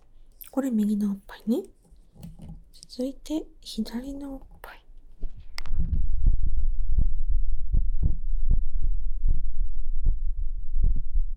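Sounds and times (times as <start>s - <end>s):
speech: 0.6s - 1.8s, 3.0s - 4.5s
heartbeat picked up against the chest: 5.2s - 11.3s
constant low rumble: 5.6s - 11.3s.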